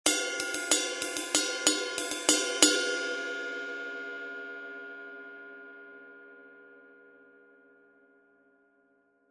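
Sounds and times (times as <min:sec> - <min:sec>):
21in sweet ride cymbal: 0:00.1 - 0:03.6.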